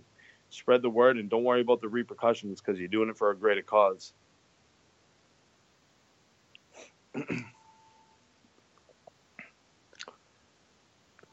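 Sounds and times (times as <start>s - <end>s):
speech: 0.5s - 4.2s, 7.2s - 7.5s
person chewing food with crunches and wet mouth clicks: 9.9s - 10.2s.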